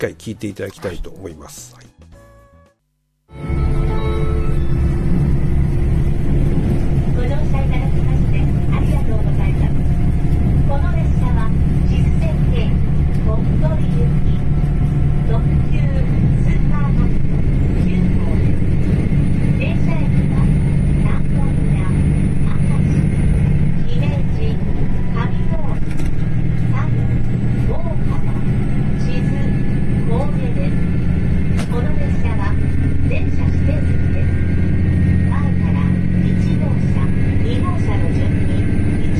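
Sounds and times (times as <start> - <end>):
speech: 0.0 - 1.9
diesel limited express train engine and running rumble: 3.3 - 39.1.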